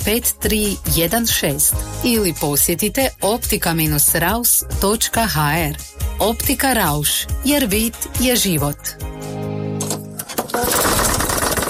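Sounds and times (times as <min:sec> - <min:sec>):
speech: 0:00.0 - 0:09.0
loud rough clattering noise: 0:09.8 - 0:11.6
tractor engine droning and stalling mid-work: 0:09.8 - 0:11.6.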